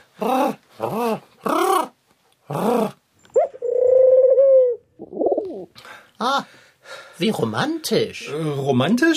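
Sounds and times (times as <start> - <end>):
speech: 0.2 - 1.3, 7.2 - 9.1
pigeon cooing in throaty rolling calls: 2.5 - 5.7.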